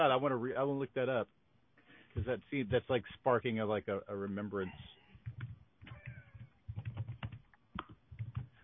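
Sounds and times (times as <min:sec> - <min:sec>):
speech: 0:00.0 - 0:01.4, 0:02.1 - 0:05.0
typing on a computer keyboard: 0:05.2 - 0:08.6.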